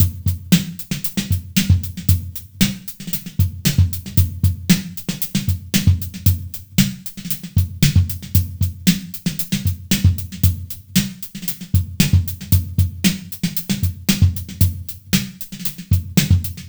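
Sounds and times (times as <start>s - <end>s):
designed drums: 0.0s - 16.6s.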